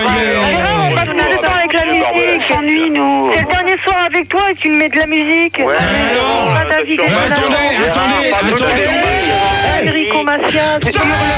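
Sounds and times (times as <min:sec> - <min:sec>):
man yelling: 0:00.0 - 0:02.4, 0:05.8 - 0:11.3
speech: 0:02.4 - 0:11.3.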